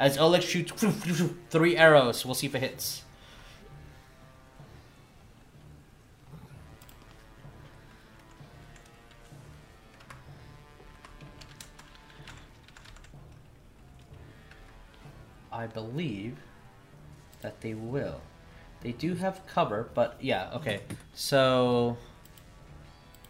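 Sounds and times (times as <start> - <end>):
speech: 0.0 - 3.1, 15.6 - 16.5, 17.4 - 22.1
computer keyboard typing: 10.9 - 13.5.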